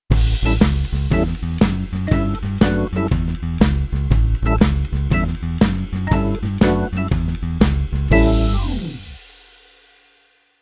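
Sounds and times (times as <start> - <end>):
keyboard organ playing blues: 0.4 - 3.5, 4.4 - 9.2.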